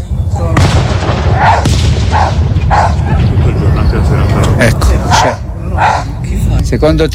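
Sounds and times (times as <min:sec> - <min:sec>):
fireworks booming and crackling: 0:00.3 - 0:05.6
dog barking in a small field beneath a fireworks display: 0:01.4 - 0:03.2, 0:05.1 - 0:06.1
speech: 0:06.7 - 0:07.1.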